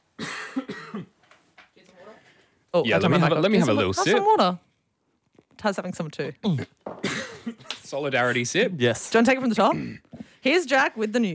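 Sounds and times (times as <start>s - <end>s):
man clearing his throat: 0.2s - 1.1s, 6.4s - 7.7s
man coughing: 0.2s - 1.1s, 6.4s - 7.7s
speech: 2.8s - 4.6s, 5.6s - 7.2s, 7.9s - 11.3s.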